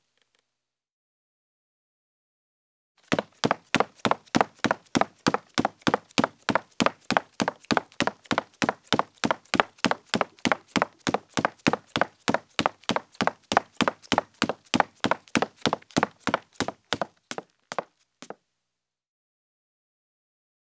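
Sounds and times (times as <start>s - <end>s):
Foley footsteps: 3.1s - 17.8s.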